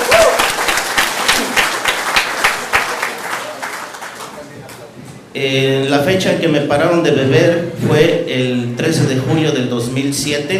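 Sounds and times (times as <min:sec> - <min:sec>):
audience applauding at an event: 0:00.0 - 0:04.9
speech: 0:05.4 - 0:10.5.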